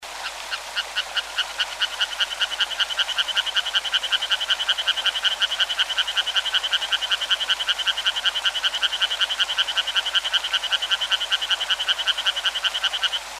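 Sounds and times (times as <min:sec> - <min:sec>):
Hyla sarda tree frog: 0:00.0 - 0:13.3.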